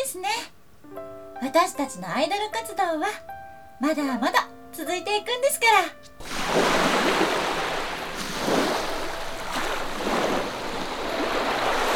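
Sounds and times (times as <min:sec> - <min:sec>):
speech: 0:00.2 - 0:06.8
ocean surf washing against the shore: 0:06.2 - 0:11.9.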